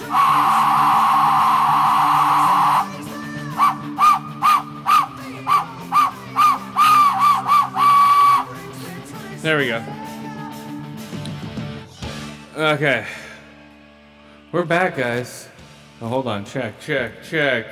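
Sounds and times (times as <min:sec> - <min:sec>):
death whistle wailing and shrieking: 0:00.0 - 0:08.6
speech: 0:12.7 - 0:13.2, 0:14.5 - 0:17.7.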